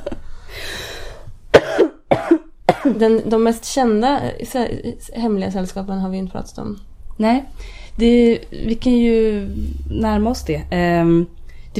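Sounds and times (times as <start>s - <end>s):
breathy inhale: 0.2s - 1.4s, 7.6s - 8.0s
harsh coughing: 1.5s - 3.0s
speech: 2.8s - 11.7s.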